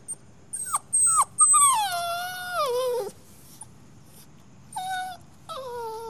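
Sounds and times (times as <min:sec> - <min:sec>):
puppy whimpering and yelping at night: 0:00.5 - 0:03.2, 0:04.7 - 0:06.0.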